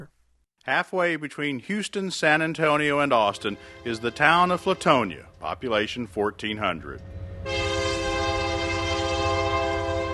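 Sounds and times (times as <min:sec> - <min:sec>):
speech: 0:00.0 - 0:07.6
loud sustained train horn blaring: 0:03.1 - 0:10.1.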